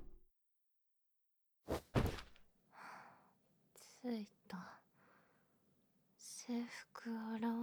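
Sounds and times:
door opening with a sharp mechanical thunk: 0:01.7 - 0:02.3
heavy clunks: 0:01.7 - 0:02.4
speech: 0:04.1 - 0:04.7, 0:06.5 - 0:07.6.

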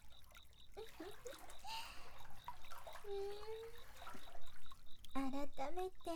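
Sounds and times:
water splashing and trickling in a hot spring bath: 0:00.0 - 0:06.1.

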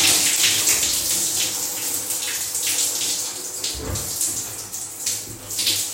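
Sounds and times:
shower water spraying and splashing: 0:00.0 - 0:05.9.

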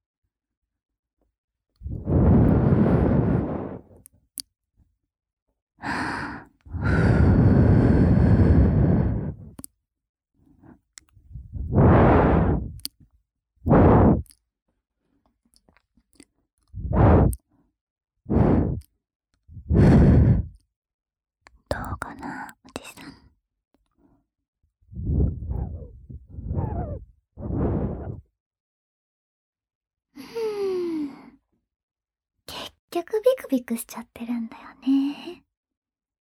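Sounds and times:
gentle breaths blown out in soft airy puffs: 0:01.8 - 0:04.0, 0:05.8 - 0:09.7, 0:10.5 - 0:12.9, 0:13.7 - 0:14.4, 0:16.7 - 0:17.5, 0:18.3 - 0:18.9, 0:19.5 - 0:20.6, 0:24.9 - 0:28.3
speech: 0:32.9 - 0:35.5.

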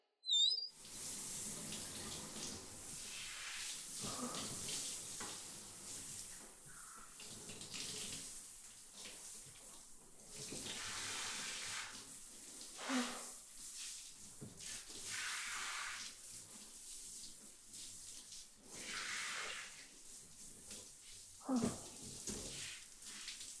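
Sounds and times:
running water rinsing shampoo out of hair: 0:00.8 - 0:23.5.

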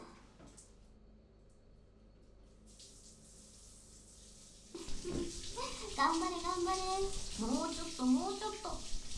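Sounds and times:
hot running water rinsing soap foam away: 0:02.6 - 0:09.1.

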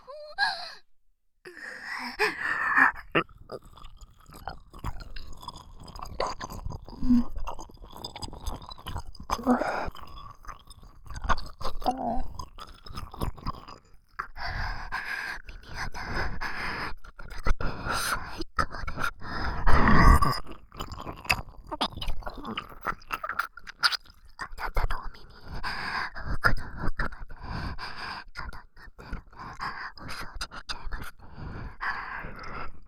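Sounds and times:
breathy sighs and gasps: 0:01.5 - 0:10.4, 0:11.1 - 0:20.6, 0:24.4 - 0:32.8
wet licking and mouth sounds deep in the ear for ASMR: 0:03.0 - 0:14.3, 0:18.9 - 0:24.8.

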